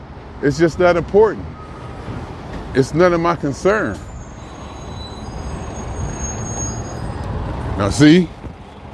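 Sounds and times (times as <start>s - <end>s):
bus engine drone and road noise: 0.0s - 8.9s
speech: 0.4s - 2.2s, 2.8s - 4.1s, 7.8s - 8.4s.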